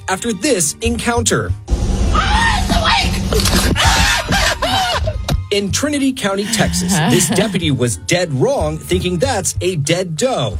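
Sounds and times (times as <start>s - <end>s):
speech: 0.1s - 1.7s, 5.5s - 10.5s
man screaming and yelping in fright: 2.2s - 3.0s
laughter: 3.4s - 5.3s, 6.3s - 7.8s.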